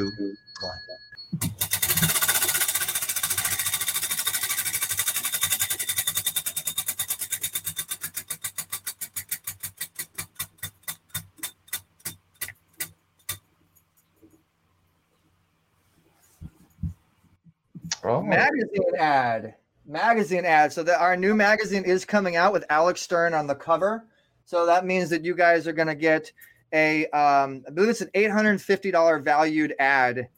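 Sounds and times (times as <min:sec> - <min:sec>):
speech: 0:00.0 - 0:00.8, 0:18.3 - 0:30.3
prize wheel spinning and clicking during a giveaway: 0:01.4 - 0:13.4.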